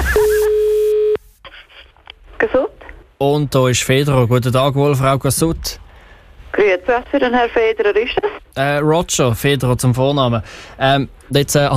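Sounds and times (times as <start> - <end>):
telephone dialing tone: 0.0 - 1.2
speech: 2.4 - 5.8, 6.5 - 11.7.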